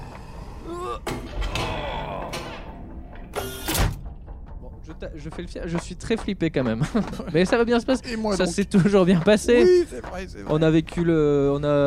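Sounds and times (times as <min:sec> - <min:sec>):
door creaking as it swings: 0:01.0 - 0:04.1
speech: 0:04.9 - 0:11.8
laughter: 0:06.6 - 0:10.6.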